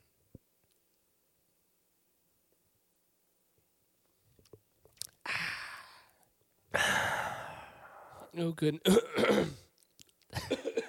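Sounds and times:
faint catches of breath: 0:05.3 - 0:08.3
speech: 0:08.4 - 0:09.6
loud harsh raspy coughing fit: 0:08.8 - 0:09.7.

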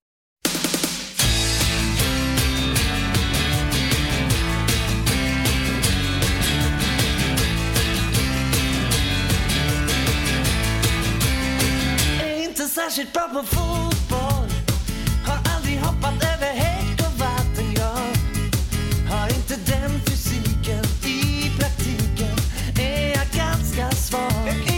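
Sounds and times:
steady punchy drum beat: 0:00.4 - 0:12.3, 0:13.5 - 0:24.7
full band playing: 0:01.2 - 0:12.2
song with sung vocals: 0:12.0 - 0:24.7
speech: 0:13.3 - 0:13.9.

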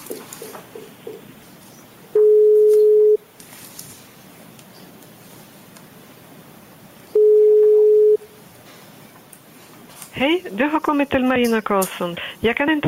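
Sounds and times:
telephone ringback tone while a call connects: 0:02.2 - 0:03.2, 0:07.2 - 0:08.3
speech: 0:10.2 - 0:12.8.

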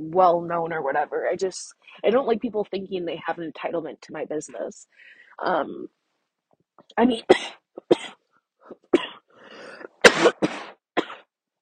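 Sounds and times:
speech: 0:00.1 - 0:06.0, 0:06.8 - 0:09.2
person coughing from marijuana smoke inside a car with windows shut: 0:07.3 - 0:11.3.

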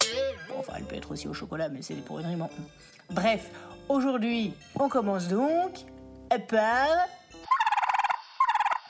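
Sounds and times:
speech: 0:00.8 - 0:07.2
turkey gobbling: 0:07.5 - 0:08.8.

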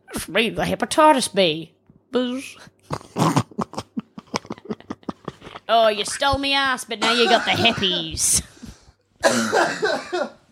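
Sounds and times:
speech: 0:00.2 - 0:03.4, 0:05.7 - 0:08.5, 0:09.2 - 0:10.4
person coughing: 0:07.0 - 0:08.4, 0:09.2 - 0:10.5.

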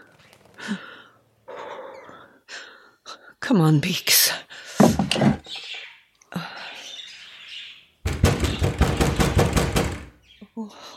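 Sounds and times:
speech: 0:00.7 - 0:00.9, 0:03.5 - 0:04.3
heavy cellar door knocking and rattling: 0:08.1 - 0:10.2.

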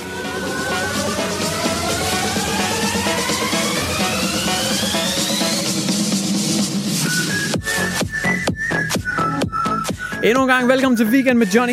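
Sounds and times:
rising synth sweeps: 0:00.0 - 0:07.6
beat drop with punchy rhythmic stabs and heavy hits: 0:00.0 - 0:11.0
loud electronic music: 0:00.0 - 0:11.7
speech: 0:10.2 - 0:11.7.

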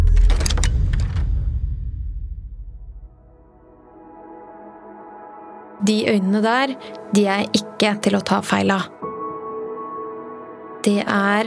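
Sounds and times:
door opening: 0:00.0 - 0:01.6
speech: 0:05.8 - 0:09.0, 0:10.8 - 0:11.4.

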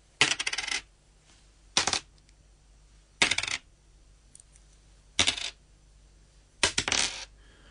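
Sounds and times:
coins bouncing off a table: 0:00.2 - 0:00.9, 0:03.2 - 0:03.7, 0:05.2 - 0:05.6, 0:06.6 - 0:07.3.

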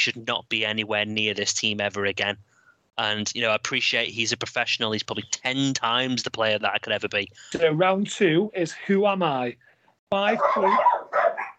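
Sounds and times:
speech: 0:00.0 - 0:11.2
golden retriever barking: 0:10.3 - 0:11.5.

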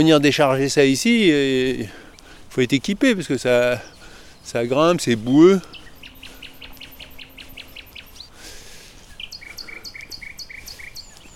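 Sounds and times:
speech: 0:00.0 - 0:05.8
nightingale singing outdoors: 0:02.9 - 0:11.3.

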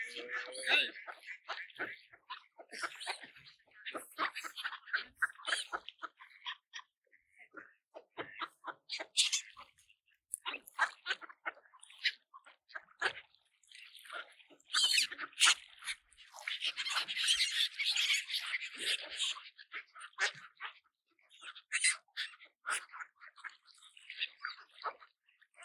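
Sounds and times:
low voice murmuring: 0:00.0 - 0:01.0
ducks splashily pecking peas at a park lake: 0:00.0 - 0:25.6.

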